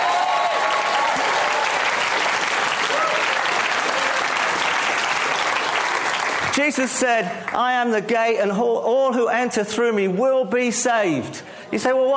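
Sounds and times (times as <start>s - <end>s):
crowd cheering: 0.0s - 6.6s
crowd applauding: 0.0s - 7.6s
speech: 6.6s - 12.1s.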